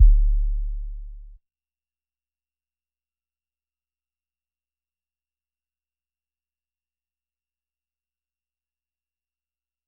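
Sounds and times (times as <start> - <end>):
deep 808 kick drum: 0.0 - 1.2.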